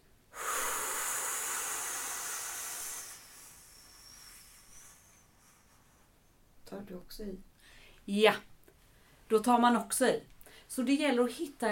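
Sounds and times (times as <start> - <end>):
long loud airy breath drawn in: 0.3 - 6.1, 7.6 - 8.0
speech: 6.7 - 8.5, 9.3 - 11.7.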